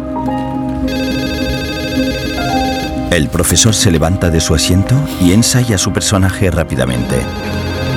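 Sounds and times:
telephone ringing in a hangar: 0.8 - 3.7, 6.9 - 7.9
speech: 3.1 - 7.5.

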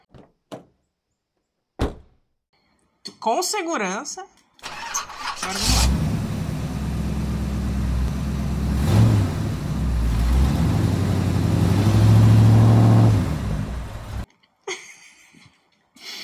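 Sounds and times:
car door opening: 1.8 - 2.2
speech: 3.2 - 4.4, 5.4 - 6.0
car engine rumbling and revving: 5.2 - 14.2.

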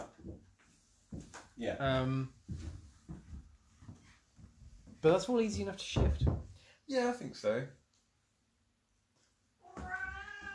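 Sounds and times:
speech: 1.1 - 2.8, 5.0 - 7.8
cat meowing: 9.6 - 10.5.

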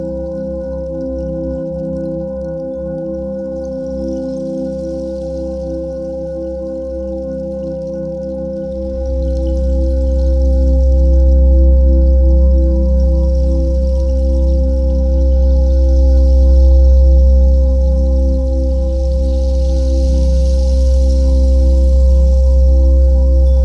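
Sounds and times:
528Hz binaural beat tone: 8.4 - 23.6.

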